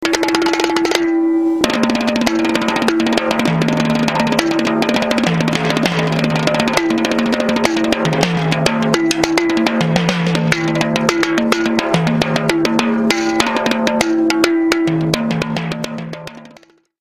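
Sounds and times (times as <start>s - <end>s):
rototom drum: 0.0s - 16.9s.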